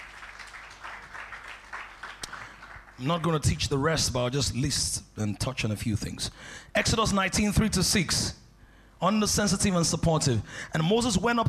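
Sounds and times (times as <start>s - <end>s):
congregation applauding: 0.0s - 3.4s
speech: 3.0s - 8.4s, 9.0s - 11.4s.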